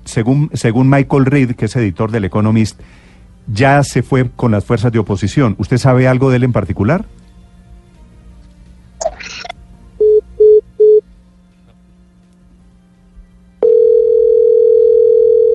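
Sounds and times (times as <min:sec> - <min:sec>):
speech: 0:00.2 - 0:07.2
continuous telephone dial tone: 0:10.0 - 0:11.0, 0:13.6 - 0:15.5
short telephone tones: 0:13.6 - 0:15.5.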